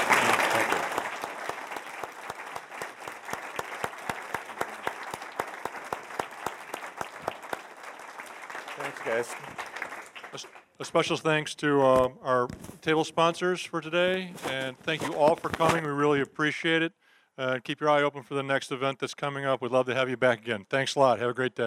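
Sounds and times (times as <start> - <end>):
audience applause: 0.0 - 10.7
speech: 9.1 - 9.7, 10.3 - 21.6.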